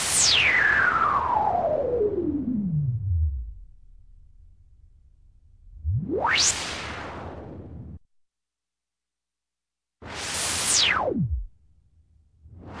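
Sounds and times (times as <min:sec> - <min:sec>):
electronic space whoosh left to right to left: 0:00.2 - 0:08.0, 0:10.3 - 0:11.6.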